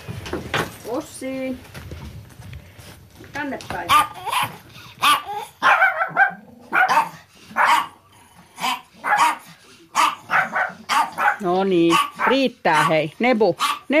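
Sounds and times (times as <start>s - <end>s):
speech: 1.0s - 1.8s, 3.4s - 4.6s, 11.4s - 13.9s
several dogs barking: 3.9s - 13.9s.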